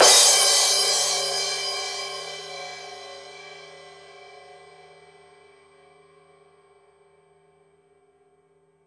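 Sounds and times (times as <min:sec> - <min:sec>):
crash cymbal: 0:00.0 - 0:05.1.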